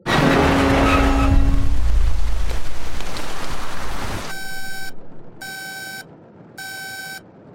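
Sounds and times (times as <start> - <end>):
loud steady roar of engine noise: 0.0 - 5.4
aircraft cockpit warning alarms with harsh buzzing tones: 4.3 - 7.2.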